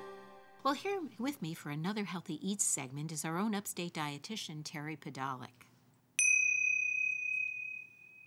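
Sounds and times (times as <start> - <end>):
speech: 0.7 - 5.7
meditation bell struck: 6.2 - 8.2.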